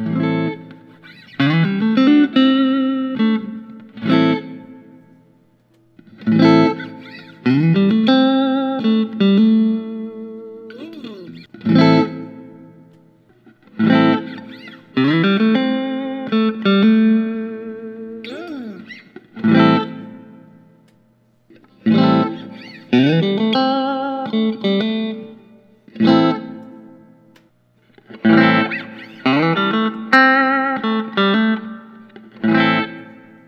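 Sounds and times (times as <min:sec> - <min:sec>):
surf green electric guitar: 0:00.0 - 0:33.4.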